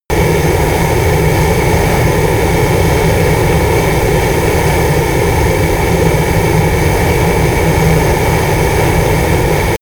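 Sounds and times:
private Cessna turbine plane at full power: 0:00.0 - 0:09.7.

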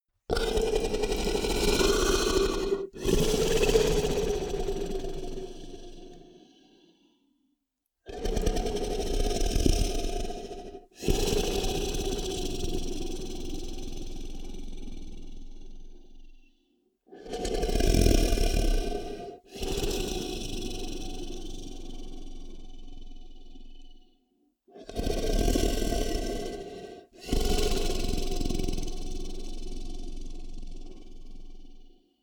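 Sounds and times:
comedy cartoon monster snore: 0:00.3 - 0:07.1, 0:08.1 - 0:16.5, 0:17.2 - 0:24.0, 0:24.7 - 0:32.0.

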